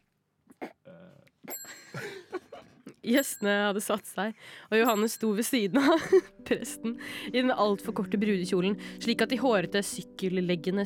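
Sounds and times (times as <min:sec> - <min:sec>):
small bell ringing by a church altar at a wedding: 0:01.5 - 0:02.2, 0:03.1 - 0:03.9, 0:04.8 - 0:06.3
speech: 0:03.1 - 0:10.8.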